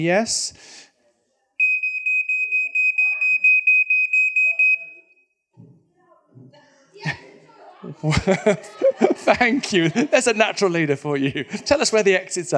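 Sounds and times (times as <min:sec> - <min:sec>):
speech: 0:00.0 - 0:00.8, 0:07.8 - 0:12.5
smoke detector alarm rapid shrill beeping: 0:01.6 - 0:05.4
people laughing: 0:07.0 - 0:12.5.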